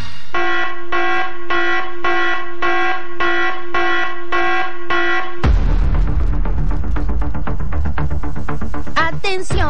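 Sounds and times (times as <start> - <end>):
loud electronic alarm buzzing: 0.3 - 5.4
noisy rush: 5.4 - 9.6.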